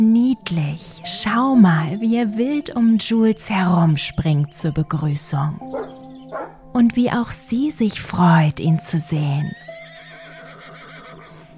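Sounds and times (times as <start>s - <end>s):
speech: 0.0s - 9.6s
horse neighing: 9.5s - 11.5s.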